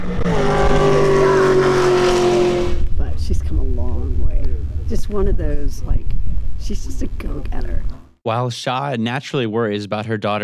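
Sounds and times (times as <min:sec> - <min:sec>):
modified race car engine at 100 mph on a straightaway: 0:00.0 - 0:08.0
speech: 0:05.2 - 0:06.1, 0:06.7 - 0:10.4.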